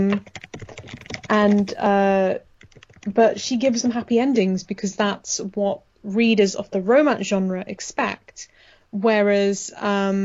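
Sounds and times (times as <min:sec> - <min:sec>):
typing on a computer keyboard: 0:00.0 - 0:02.0, 0:02.6 - 0:04.2
speech: 0:01.3 - 0:10.2.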